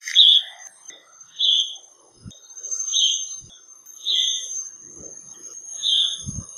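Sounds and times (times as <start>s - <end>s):
Yellow-bellied Bulbul calls in Kledang Sayong Forest Reserve Malaysia: 0.0s - 1.8s, 2.7s - 4.6s, 5.2s - 6.5s.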